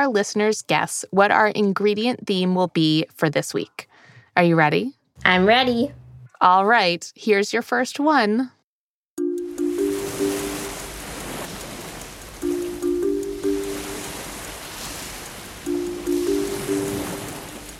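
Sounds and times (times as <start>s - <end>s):
speech: 0.0s - 8.6s
short chime-like melodic pattern: 9.2s - 11.1s, 12.4s - 14.4s, 15.7s - 17.7s
ocean waves: 9.4s - 17.7s.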